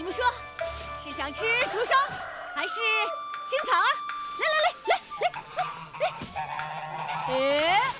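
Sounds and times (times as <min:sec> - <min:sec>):
speech: 0:01.2 - 0:06.7, 0:07.3 - 0:07.9
domestic goose honking: 0:04.4 - 0:07.9.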